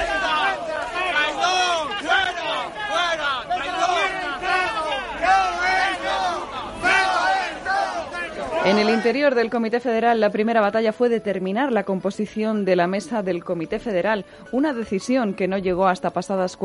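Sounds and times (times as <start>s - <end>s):
large crowd of party members booing and jeering at party headquarters: 0.0s - 9.2s
speech: 8.6s - 16.6s.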